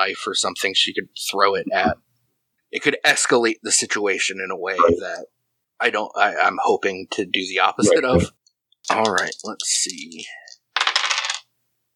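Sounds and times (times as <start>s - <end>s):
speech: 0.0s - 2.0s, 2.7s - 10.4s
dice clattering across a hard table: 8.9s - 11.5s.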